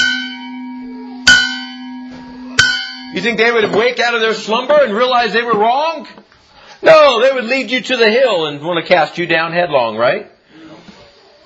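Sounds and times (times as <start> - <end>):
bell struck with long bright humming tone: 0.0 - 3.6
speech: 3.1 - 6.2, 6.8 - 10.3.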